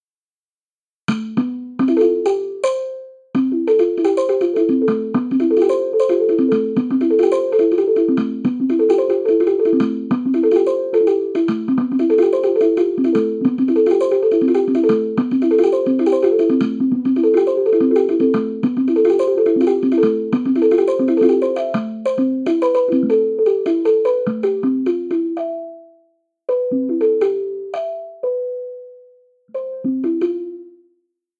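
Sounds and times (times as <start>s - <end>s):
wooden kalimba thumb piano: 1.1s - 30.9s.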